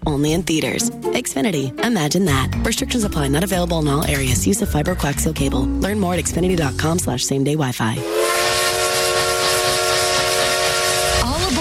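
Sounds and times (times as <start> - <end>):
speech: 0.0 - 8.6
loud steam train whistle: 8.0 - 11.5.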